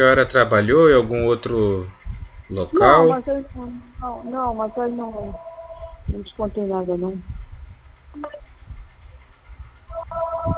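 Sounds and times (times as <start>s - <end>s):
speech: 0.0s - 5.5s, 6.1s - 7.4s, 8.2s - 8.4s
low rumble: 0.0s - 10.5s
telephone ringing with an electronic ringtone: 4.6s - 5.9s, 9.9s - 10.5s.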